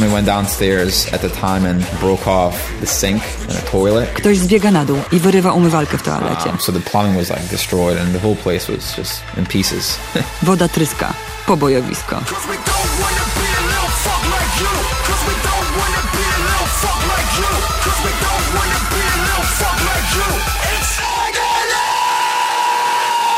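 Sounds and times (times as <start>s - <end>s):
speech: 0.0s - 16.1s
crowd screaming and yelling in a brawl: 12.4s - 23.3s.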